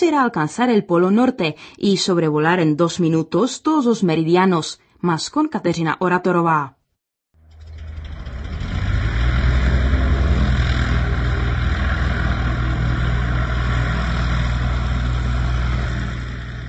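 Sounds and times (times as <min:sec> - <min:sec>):
speech: 0:00.0 - 0:06.8
L-200 Morava vintage 1950s propeller airplane engine drone: 0:07.4 - 0:16.6.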